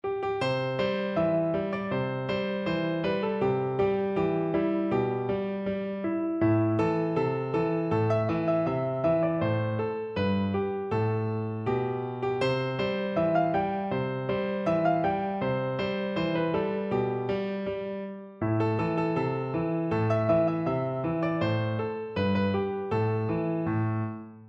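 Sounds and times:
piano: 0.0 - 24.4.

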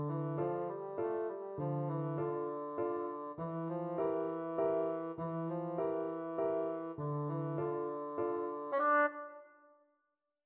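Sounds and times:
bassoon scream: 0.1 - 9.4.

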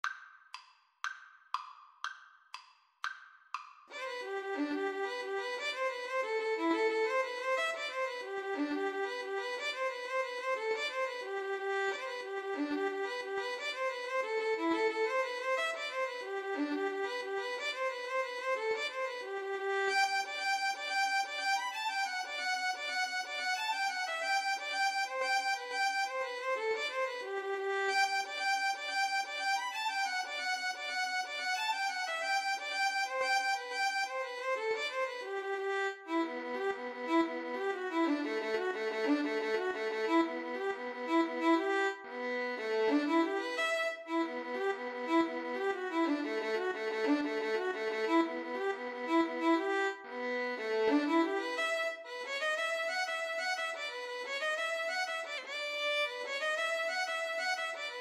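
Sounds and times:
cello playing Irish jig medley: 3.9 - 28.7, 33.2 - 53.6
violin playing Irish jig medley: 3.9 - 57.9.

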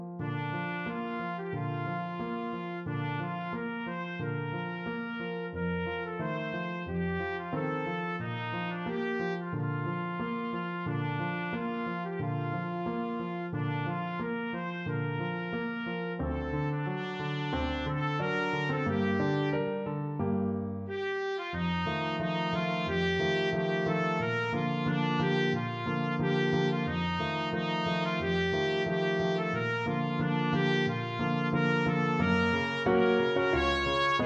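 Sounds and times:
trumpet playing an aria: 0.2 - 20.2, 20.9 - 34.2.

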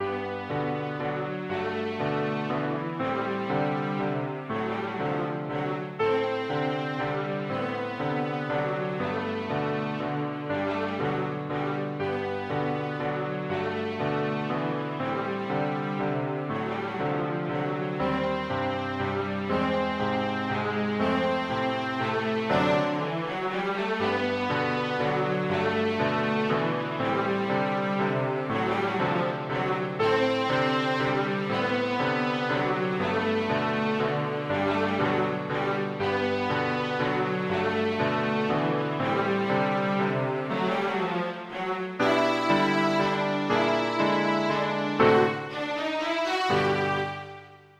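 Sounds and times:
cello playing a classical waltz: 0.0 - 47.7.

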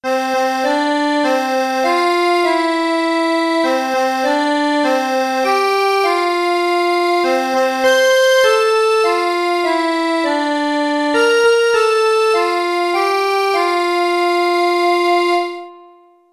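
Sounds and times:
song on accordion: 0.0 - 16.3.

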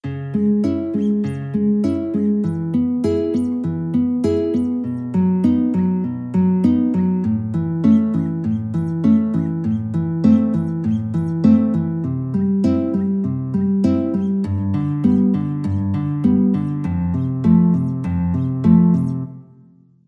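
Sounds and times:
guitar playing: 0.0 - 19.8.

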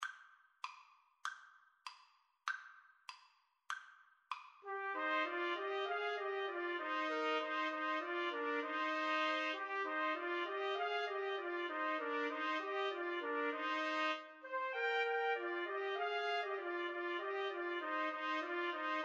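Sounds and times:
trumpet trio playing a carol: 4.7 - 19.0.

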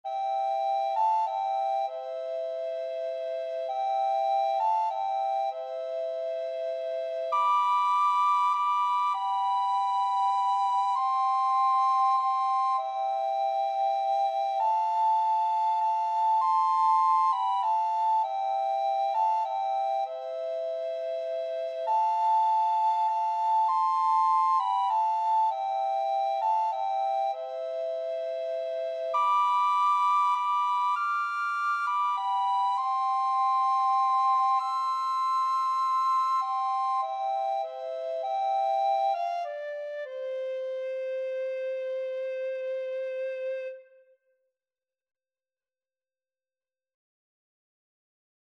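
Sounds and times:
recorder duet playing a Christmas carol: 0.1 - 43.8.

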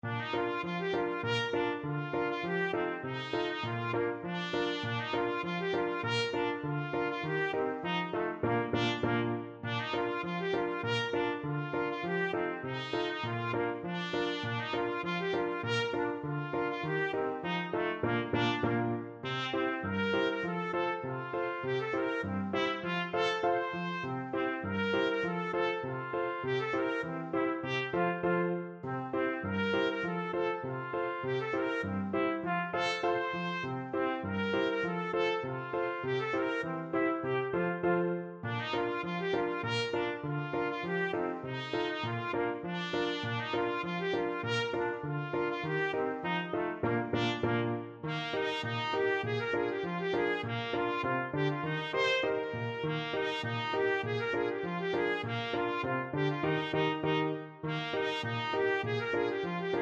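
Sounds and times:
polka music: 0.0 - 59.7
trumpet: 0.0 - 59.7.

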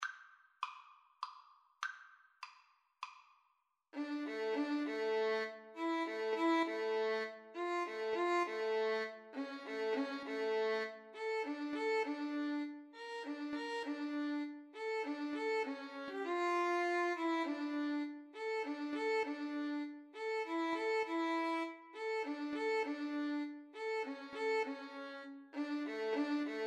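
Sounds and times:
violin and cello duet: 4.0 - 26.6.

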